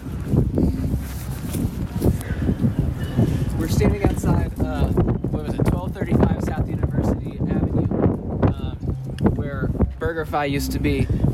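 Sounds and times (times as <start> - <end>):
wind gusts buffeting the microphone on a street at night: 0.0 - 11.3
speech: 10.1 - 11.3.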